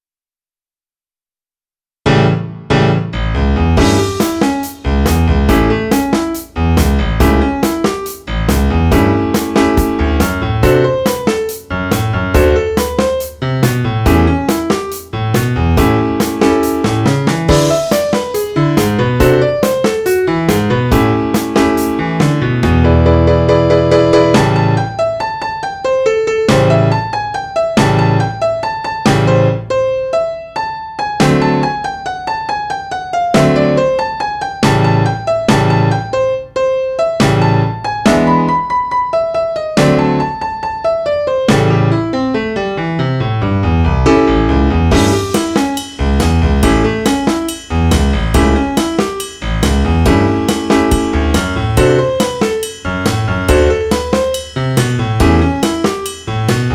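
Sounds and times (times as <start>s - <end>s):
rock n roll piano: 2.0s - 56.7s
drum kit: 3.6s - 25.0s, 26.4s - 29.6s, 31.2s - 32.0s, 33.4s - 36.1s, 37.2s - 38.8s, 39.8s - 40.6s, 41.5s - 42.2s, 44.8s - 56.7s.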